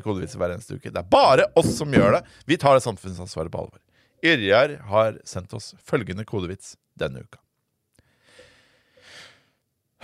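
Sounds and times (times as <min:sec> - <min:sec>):
speech: 0:00.0 - 0:07.4
deep breath taken before speaking: 0:08.0 - 0:10.0.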